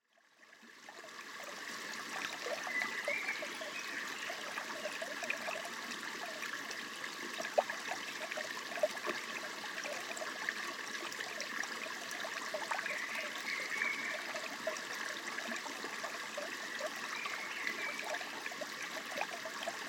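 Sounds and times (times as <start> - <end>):
small creek: 0.0 - 19.8.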